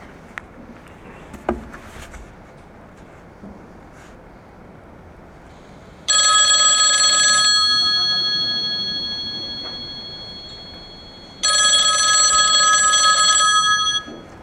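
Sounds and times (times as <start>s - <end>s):
old-fashioned telephone bell ringing with a metallic trill: 6.1s - 14.4s.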